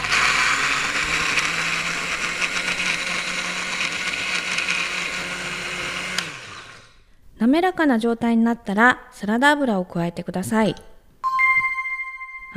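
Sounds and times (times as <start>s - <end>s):
blender pureeing a carrot onion mustard garlic and mayonnaise dressing: 0.0s - 7.0s
speech: 7.5s - 10.9s.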